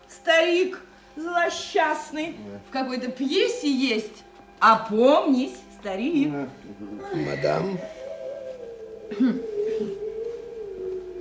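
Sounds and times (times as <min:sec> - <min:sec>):
speech: 0:00.3 - 0:08.0, 0:09.1 - 0:09.5
dog howling: 0:06.8 - 0:11.2.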